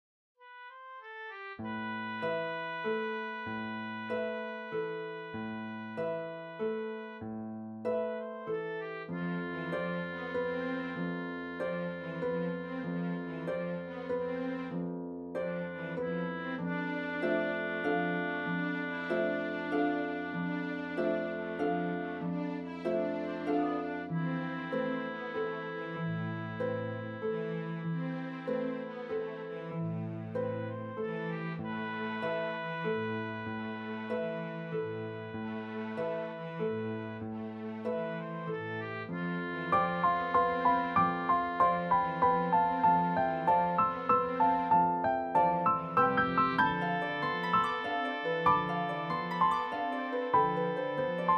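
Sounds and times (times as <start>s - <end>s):
old music: 0.4s - 51.3s.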